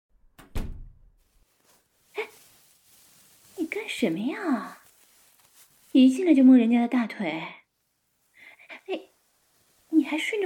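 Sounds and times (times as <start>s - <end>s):
door closing thump: 0.4s - 1.0s
speech: 3.9s - 4.8s, 6.0s - 7.6s, 10.0s - 10.4s.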